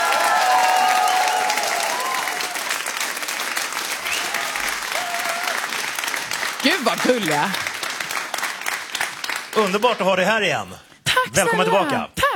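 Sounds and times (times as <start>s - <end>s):
faint whoops from studio audience: 0.0s - 2.6s, 4.0s - 5.6s
studio audience applause: 0.0s - 10.6s
speech: 6.8s - 7.7s, 9.6s - 12.3s.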